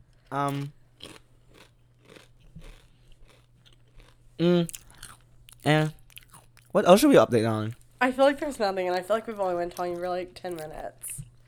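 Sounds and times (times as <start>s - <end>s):
crunching of potato chips being chewed: 0.0s - 11.4s
speech: 0.3s - 0.8s, 4.4s - 4.8s, 5.6s - 6.0s, 6.8s - 11.2s
short loud hummed vocal sounds: 4.4s - 4.7s.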